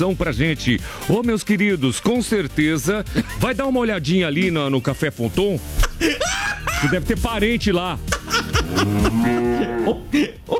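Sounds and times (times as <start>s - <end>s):
speech: 0.0s - 10.5s
laughter: 5.8s - 7.4s, 8.1s - 10.5s
cow mooing: 8.6s - 10.0s.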